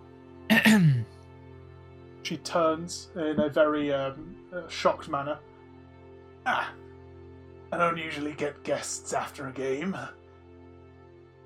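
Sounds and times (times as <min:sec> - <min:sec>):
man clearing throat: 0:00.5 - 0:01.1
speech: 0:00.7 - 0:01.0, 0:02.3 - 0:05.5, 0:06.4 - 0:06.8, 0:07.7 - 0:10.2.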